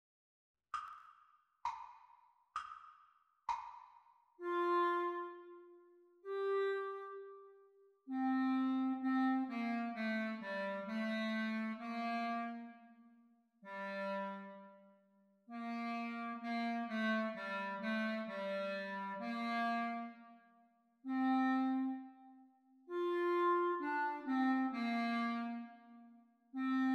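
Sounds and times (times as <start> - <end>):
clarinet duet played at practice speed: 4.4 - 13.0, 13.7 - 14.9, 15.5 - 20.4, 21.0 - 26.9.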